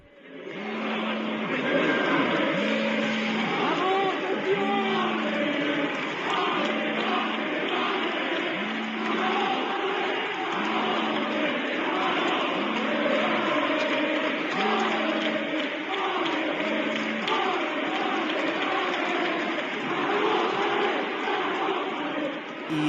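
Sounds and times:
football fans cheering and chanting at team bus arrival: 0.0 - 22.8.

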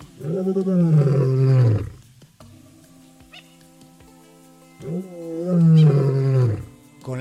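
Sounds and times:
lion roaring: 0.0 - 2.0, 4.8 - 6.8.

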